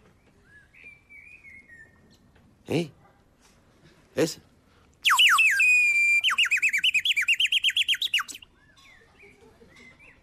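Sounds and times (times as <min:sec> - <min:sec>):
birds chirping: 0:00.0 - 0:02.4, 0:05.0 - 0:10.2
speech: 0:02.7 - 0:03.0, 0:04.2 - 0:04.5.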